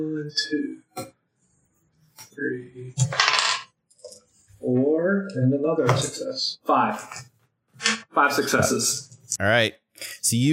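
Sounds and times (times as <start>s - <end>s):
speech: 0.0s - 1.2s, 2.3s - 3.4s, 4.1s - 10.5s
dice clattering across a tabletop: 3.1s - 3.7s.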